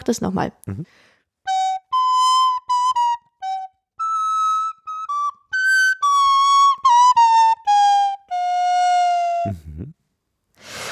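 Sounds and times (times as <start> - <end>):
speech: 0.1 - 1.1
solo recorder melody with bent-down final notes: 1.4 - 9.9
breathy noise: 9.4 - 10.0.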